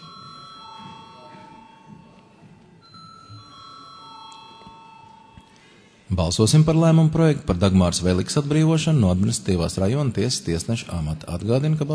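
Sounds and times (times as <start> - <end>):
bell ringing in a parliament chamber to call a vote: 0.0 - 2.2, 2.8 - 5.8
speech: 6.1 - 11.9.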